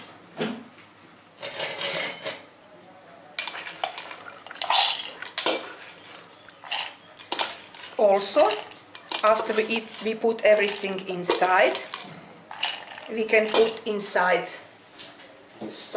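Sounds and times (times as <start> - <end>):
lentils tipped into a plastic blender jar: 3.4 - 14.2
speech: 8.0 - 12.2, 13.1 - 14.6, 15.6 - 15.9.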